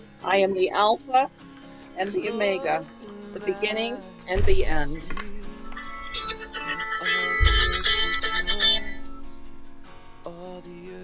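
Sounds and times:
speech: 0:00.2 - 0:05.2
low thump: 0:04.4 - 0:05.3
phone ringing with a melodic chiming electronic ringtone: 0:04.5 - 0:09.4.

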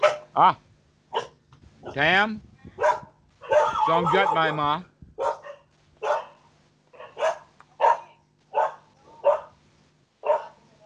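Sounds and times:
dogs barking territorially: 0:00.0 - 0:00.4, 0:01.1 - 0:02.1, 0:02.8 - 0:04.5, 0:05.2 - 0:09.6, 0:10.2 - 0:10.6
speech: 0:00.4 - 0:00.6, 0:02.0 - 0:02.9, 0:03.5 - 0:04.9.

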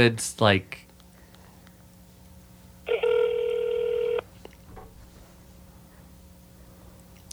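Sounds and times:
electronic phone tone on speakerphone: 0:02.9 - 0:04.3.

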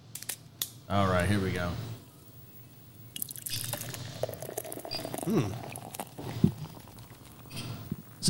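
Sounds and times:
speech: 0:00.9 - 0:01.9, 0:05.3 - 0:05.7
beer pouring into a glass: 0:03.2 - 0:08.2.

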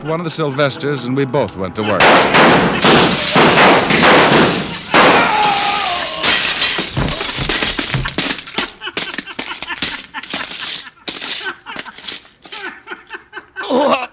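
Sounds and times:
laughter: 0:00.0 - 0:02.0, 0:05.5 - 0:14.1
speech: 0:00.0 - 0:04.6
mirrors shattering from gunshots: 0:02.0 - 0:12.8
fragments of broken mirror glass falling: 0:02.7 - 0:12.8.

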